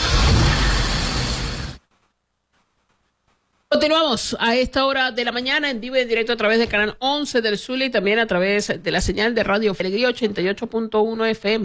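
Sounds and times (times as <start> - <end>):
car engine starting and revving: 0.0 - 1.8
speech: 3.8 - 11.6.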